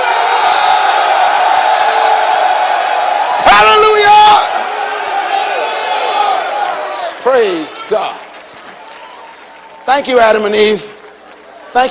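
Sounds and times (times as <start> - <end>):
large crowd of men roaring and yelling: 0.0 - 8.1
overlapping shouts and screams: 0.0 - 8.1
speech: 9.9 - 10.9.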